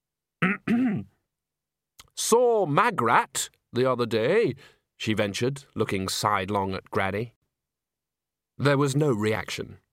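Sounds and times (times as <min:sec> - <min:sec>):
speech: 0:00.4 - 0:01.1, 0:02.2 - 0:07.4, 0:08.6 - 0:09.8
person clearing throat with a voiced two-part cough: 0:00.4 - 0:01.2.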